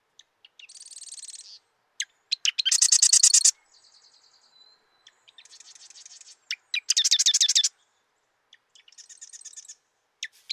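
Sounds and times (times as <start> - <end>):
marsh wren song with buzzy notes, ticks and rattling trill: 0.6 - 1.6, 2.3 - 3.5, 5.4 - 7.7.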